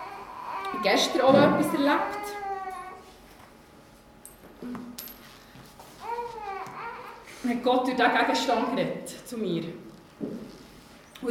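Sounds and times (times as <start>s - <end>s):
speech: 0.8s - 2.4s, 7.5s - 10.3s
small metallic clinks of a coin being dropped or handled: 4.2s - 5.6s.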